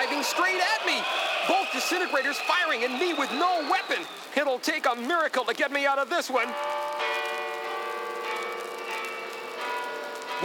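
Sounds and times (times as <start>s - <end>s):
speech: 0.2s - 0.9s, 1.9s - 7.1s
church bells ringing in a bell tower: 6.4s - 10.4s.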